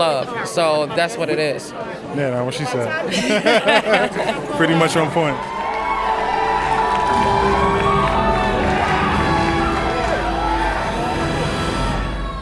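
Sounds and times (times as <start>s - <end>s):
speech: 0.0s - 5.6s
laughter: 3.0s - 5.1s
large movie theater audience cheering and yelling at a film screening: 4.6s - 12.4s.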